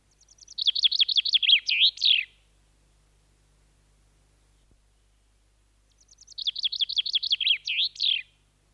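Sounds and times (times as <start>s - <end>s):
common chaffinch song: 0.0s - 2.6s, 4.4s - 8.7s.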